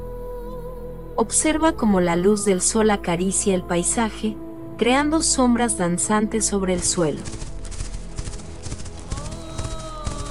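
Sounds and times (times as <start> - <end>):
low rumble: 0.0 - 10.3
speech: 1.2 - 7.4
horse hooves clip-clopping: 6.8 - 10.3.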